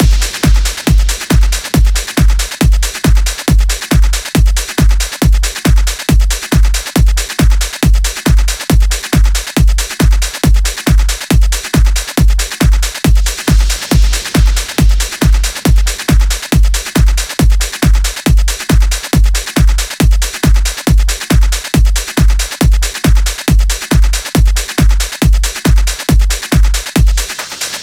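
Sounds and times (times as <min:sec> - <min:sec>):
drums at 138 BPM: 0:00.0 - 0:27.8
percussion: 0:00.0 - 0:27.8.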